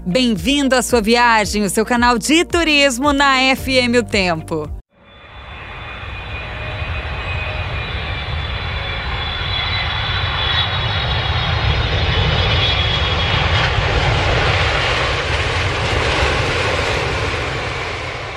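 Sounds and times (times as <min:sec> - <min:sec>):
speech: 0:00.0 - 0:04.8
airplane jet turbine engines roaring: 0:05.0 - 0:18.3.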